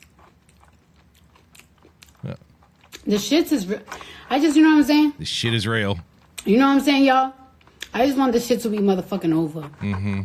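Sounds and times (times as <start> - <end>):
wet smacking open-mouthed chewing: 0.0 - 4.3, 5.2 - 6.5, 7.4 - 8.0, 9.6 - 10.2
speech: 2.2 - 2.4, 3.1 - 10.2.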